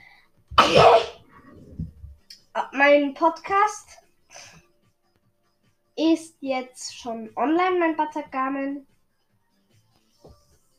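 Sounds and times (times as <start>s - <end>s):
loud sneeze: 0.6s - 1.3s
speech: 2.8s - 4.0s, 6.0s - 8.9s
small sniff: 4.3s - 4.6s.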